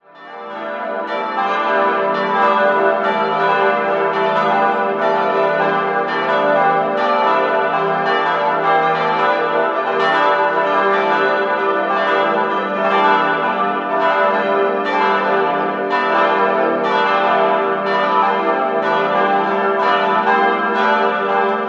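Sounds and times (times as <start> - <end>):
church bells of Christophorus church in Ingolstadt ringing: 0.0 - 21.6.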